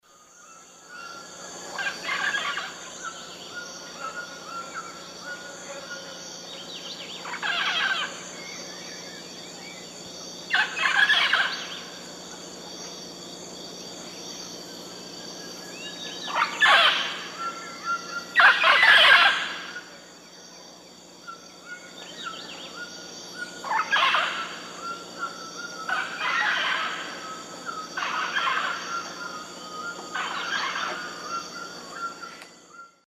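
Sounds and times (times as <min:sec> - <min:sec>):
Amazona farinosa flight calls in the Eastern Lowlands of South America: 0:01.6 - 0:03.2, 0:07.2 - 0:08.3, 0:10.5 - 0:12.0, 0:16.3 - 0:20.0, 0:23.5 - 0:32.4.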